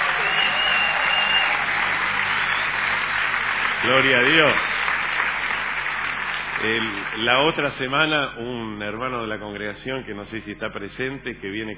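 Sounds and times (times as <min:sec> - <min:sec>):
audience applauding: 0:00.0 - 0:08.2
speech: 0:03.8 - 0:04.8, 0:06.6 - 0:11.7.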